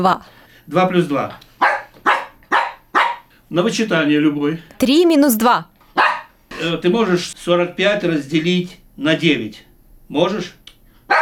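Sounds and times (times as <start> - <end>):
speech: 0.0 - 1.5, 3.5 - 5.7, 6.6 - 11.2
trained dog barking out arithmetic answers: 1.6 - 3.3, 5.9 - 6.4.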